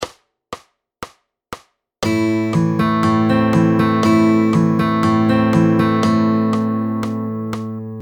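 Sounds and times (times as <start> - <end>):
fingerstyle guitar picking pattern: 2.0 - 8.0.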